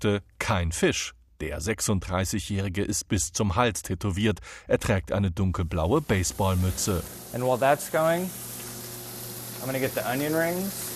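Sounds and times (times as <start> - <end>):
speech: 0.0 - 8.5, 9.6 - 10.9
food sizzling in a pan in a small vegan kitchen: 5.8 - 10.9.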